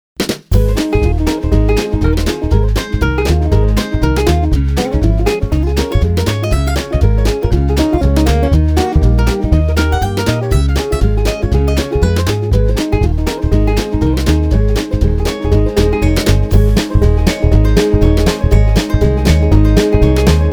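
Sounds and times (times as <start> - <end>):
little guitar: 0.5 - 20.5.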